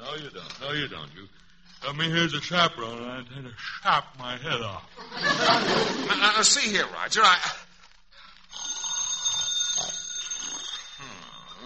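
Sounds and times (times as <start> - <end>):
speech: 0.1 - 7.6
laughter: 5.0 - 6.4
telephone ringing with a bright metallic bell tone: 8.5 - 11.0.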